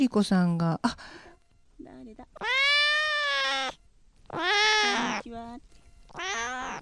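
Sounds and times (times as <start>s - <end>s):
speech: 0.0s - 1.2s, 1.8s - 2.8s, 4.3s - 6.8s
pet cat meowing: 2.3s - 5.4s, 6.1s - 6.8s.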